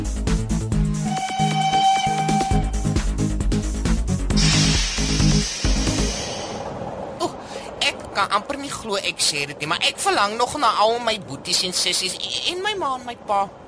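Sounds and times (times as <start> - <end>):
bouncy music: 0.0 - 6.0
toy steam train whistle: 1.0 - 3.0
steamy hiss: 4.4 - 6.8
speech: 8.2 - 13.6.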